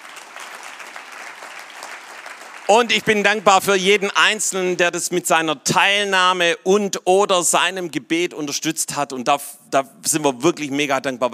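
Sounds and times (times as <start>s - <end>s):
audience applause: 0.0s - 4.0s
speech: 2.7s - 11.3s.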